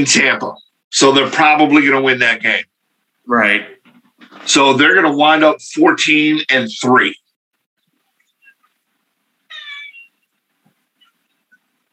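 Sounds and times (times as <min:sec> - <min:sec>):
speech: 0:00.0 - 0:02.7, 0:03.3 - 0:03.8, 0:04.4 - 0:07.2
cat meowing: 0:09.5 - 0:10.1.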